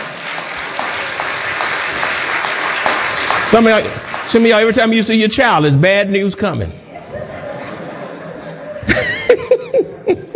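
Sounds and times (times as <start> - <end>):
crowd clapping hands in sustained applause: 0.0 - 5.4
speech: 3.5 - 6.8
laughter: 6.8 - 10.3.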